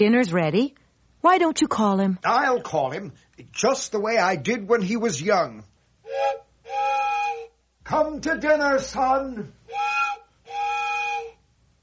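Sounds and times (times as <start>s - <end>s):
speech: 0.0s - 7.0s, 7.9s - 9.9s
old train whistle blasts: 6.0s - 7.6s, 9.7s - 11.4s.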